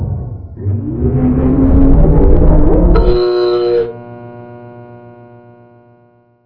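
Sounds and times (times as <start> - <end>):
power fluctuating: 0.6 - 3.9.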